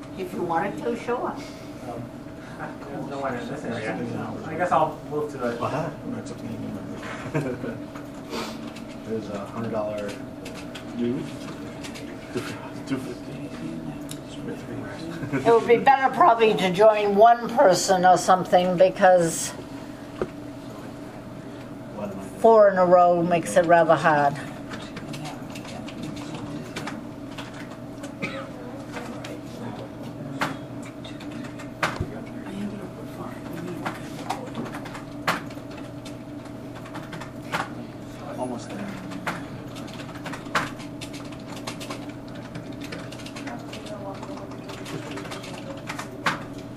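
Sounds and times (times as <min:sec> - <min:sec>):
steady low hum: 0:00.0 - 0:46.7
speech: 0:00.2 - 0:08.4, 0:09.1 - 0:11.5, 0:12.4 - 0:19.6, 0:22.4 - 0:24.5
forceful typing on a computer keyboard: 0:24.7 - 0:27.8, 0:38.8 - 0:46.6.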